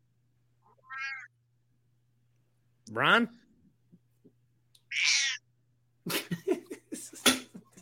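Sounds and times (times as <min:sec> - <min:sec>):
cat meowing: 0:00.6 - 0:01.3, 0:04.9 - 0:05.4
speech: 0:02.9 - 0:03.4
laughter: 0:06.1 - 0:07.8.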